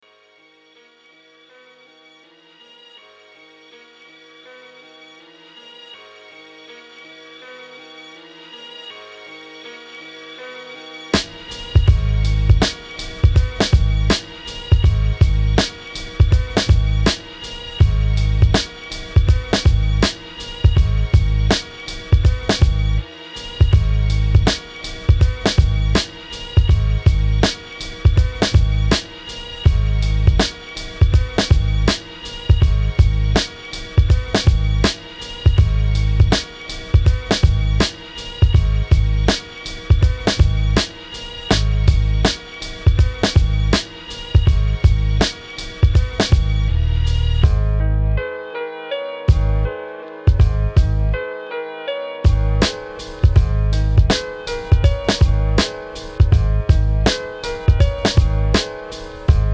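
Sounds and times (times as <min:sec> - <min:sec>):
big beats: 0:11.2 - 0:47.8, 0:49.3 - 0:49.7, 0:50.3 - 0:51.2, 0:52.3 - 0:59.5.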